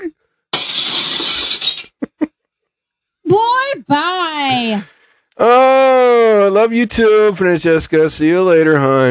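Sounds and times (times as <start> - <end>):
window glass shattering: 0.5 - 2.0
window glass pieces falling: 0.6 - 2.0
speech: 3.9 - 9.0.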